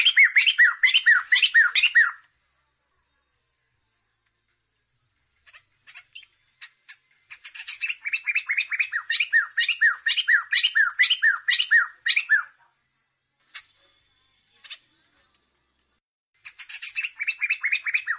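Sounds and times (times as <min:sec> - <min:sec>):
training song for caged songbirds: 0:00.0 - 0:02.3, 0:05.4 - 0:14.0, 0:16.4 - 0:18.1.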